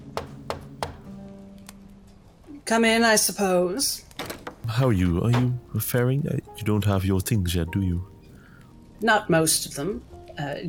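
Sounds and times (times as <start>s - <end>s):
sharp knocks on the door of someone's quarters: 0.0s - 1.2s
speech: 2.7s - 4.1s, 4.7s - 8.1s, 9.0s - 10.6s.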